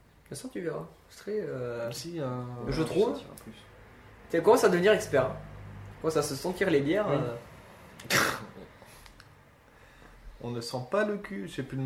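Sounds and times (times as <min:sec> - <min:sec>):
speech: 0:00.3 - 0:03.7, 0:04.3 - 0:08.3, 0:10.4 - 0:11.8
person sneezing during a casual beer tasting: 0:08.0 - 0:08.7.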